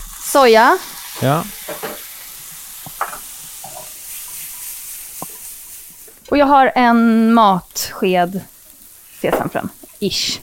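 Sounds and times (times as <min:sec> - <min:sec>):
food sizzling in a frying pan pulled off the heat: 0:00.0 - 0:10.4
speech: 0:00.3 - 0:01.6, 0:06.3 - 0:08.5, 0:09.2 - 0:10.4
stirring taps and clinks: 0:02.8 - 0:06.3.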